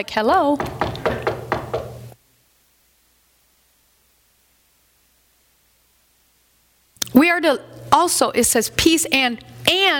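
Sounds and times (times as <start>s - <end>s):
speech: 0.0s - 0.8s, 7.2s - 9.9s
firm knocks on a wooden door: 0.6s - 2.0s.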